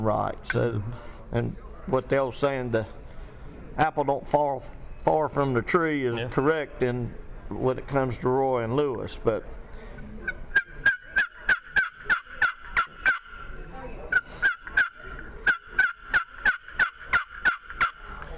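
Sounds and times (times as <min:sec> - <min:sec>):
speech: 0:00.0 - 0:03.0, 0:03.8 - 0:09.6
handmade turkey call imitating wild turkey yelps: 0:10.5 - 0:18.3.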